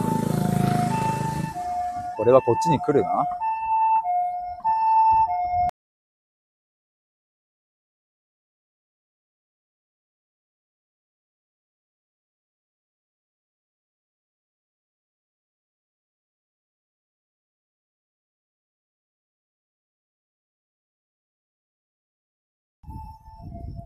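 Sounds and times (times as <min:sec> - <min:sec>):
traffic rumble: 0:00.0 - 0:04.8
ambulance siren passing in two-tone alternation: 0:00.0 - 0:05.7, 0:22.8 - 0:23.8
speech: 0:02.2 - 0:03.4.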